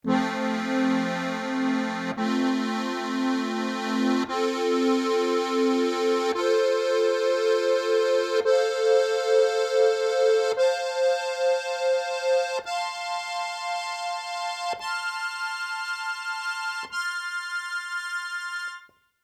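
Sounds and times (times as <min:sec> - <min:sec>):
GCFB harmonica chord: 0:00.0 - 0:18.9.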